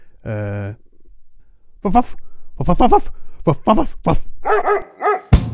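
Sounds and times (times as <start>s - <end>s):
speech: 0.2s - 0.8s, 1.8s - 5.0s
dog barking and yipping: 4.4s - 5.4s.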